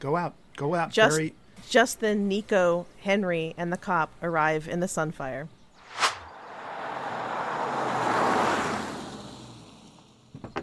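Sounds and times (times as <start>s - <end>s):
speech: 0.0s - 5.6s
car swerving through a sharp turn with engine and tire roar: 5.8s - 10.3s.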